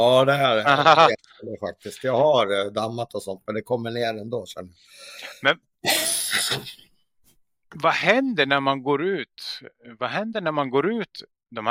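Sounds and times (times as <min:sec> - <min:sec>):
speech: 0:00.0 - 0:06.9, 0:07.7 - 0:11.6
laughter: 0:00.6 - 0:01.2
person coughing from apartment renovation dust: 0:05.8 - 0:06.8.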